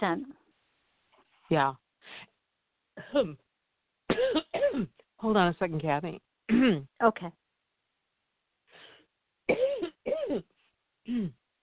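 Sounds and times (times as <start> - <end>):
speech: 0.0 - 0.4, 1.5 - 2.3, 3.1 - 3.4, 4.2 - 7.4, 10.3 - 10.5, 11.1 - 11.4
person coughing after something went down the wrong pipe: 4.1 - 5.0, 9.5 - 10.5, 11.1 - 11.4.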